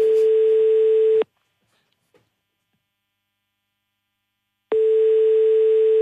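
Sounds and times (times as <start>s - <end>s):
telephone ringback tone on an outgoing call dialled from a radio switchboard: 0.0s - 1.2s, 4.7s - 5.9s.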